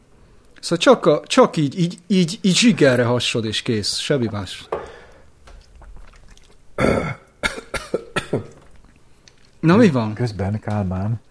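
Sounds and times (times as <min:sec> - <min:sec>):
speech: 0:00.6 - 0:04.8, 0:09.6 - 0:11.3
person coughing after a sip of Unicum liqueur: 0:06.8 - 0:08.6.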